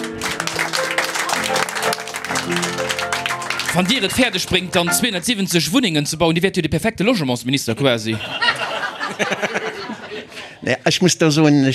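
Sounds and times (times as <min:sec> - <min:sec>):
many hands clapping in applause: 0:00.0 - 0:05.9
speech: 0:03.7 - 0:08.5, 0:09.2 - 0:11.7
laughter: 0:08.1 - 0:10.6.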